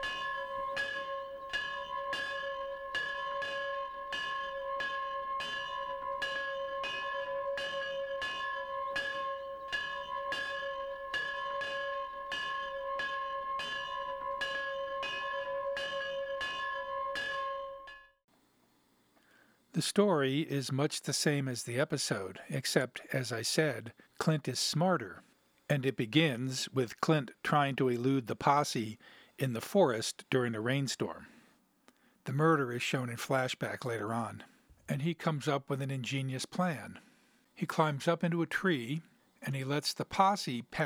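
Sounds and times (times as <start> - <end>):
schoolhouse bell ringing in a belfry: 0.0 - 18.1
speech: 19.8 - 31.3, 32.2 - 40.8.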